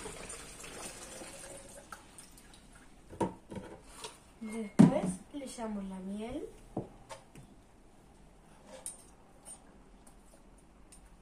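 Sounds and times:
water pouring into a container: 0.0s - 2.6s
speech: 4.6s - 6.6s.

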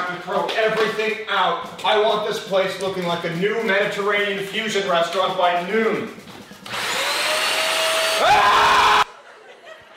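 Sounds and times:
speech: 0.1s - 6.8s
vacuum cleaner running with a high whine: 6.3s - 9.1s
laughter: 9.0s - 9.9s.

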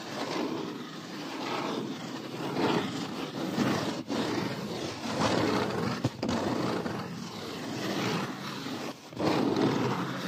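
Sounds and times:
dense gritty scratchy rubbing: 0.0s - 10.2s.

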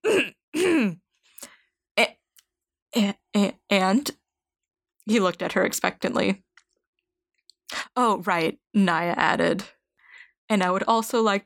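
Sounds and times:
person giving loud voiced coughs: 0.0s - 1.0s
speech: 3.8s - 4.2s, 5.0s - 6.5s, 8.0s - 9.8s, 10.5s - 11.4s.

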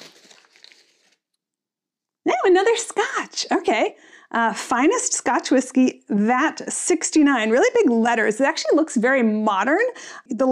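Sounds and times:
paper wrapping torn off a bottle of Scotch whisky: 0.0s - 1.2s
speech: 2.5s - 10.5s.

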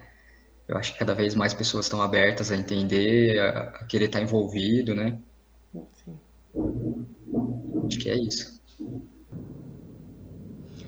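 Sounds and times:
speech: 0.7s - 6.9s, 7.9s - 9.1s
thunder rumbling: 6.6s - 10.8s.

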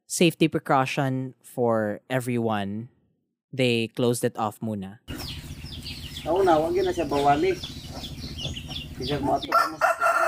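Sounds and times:
speech: 0.1s - 5.4s, 6.2s - 8.1s, 9.0s - 9.9s
aggressive chicken clucking and squawking: 5.1s - 10.2s.

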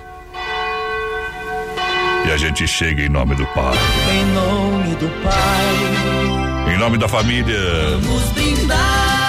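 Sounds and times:
cathedral church bell ringing: 0.0s - 7.3s
speech: 2.2s - 9.1s.

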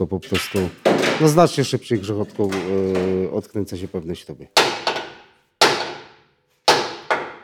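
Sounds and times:
speech: 0.0s - 4.9s
hammer straightening a car bumper holding arm: 4.6s - 7.4s.

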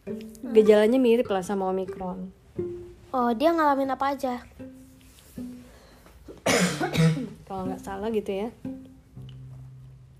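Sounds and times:
speech: 0.1s - 2.4s, 3.1s - 4.5s, 6.4s - 8.7s
two harsh loud coughs: 6.4s - 7.4s.

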